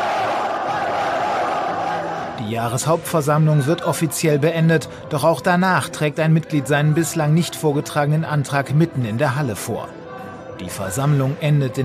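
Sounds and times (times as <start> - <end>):
loud dense crowd roar: 0.0 - 2.4
people shouting together: 0.0 - 2.4
speech: 2.5 - 10.0, 10.6 - 11.8.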